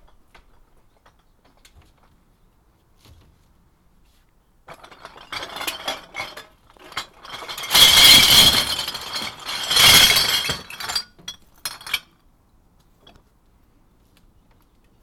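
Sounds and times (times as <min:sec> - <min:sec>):
empty glass bottles clinking at recycling: 0:04.8 - 0:12.0.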